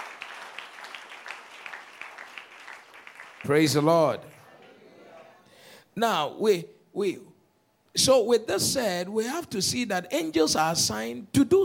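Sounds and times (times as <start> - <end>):
crowd applauding: 0.0 - 4.7
speech: 3.4 - 4.4, 6.0 - 7.3, 7.9 - 11.6.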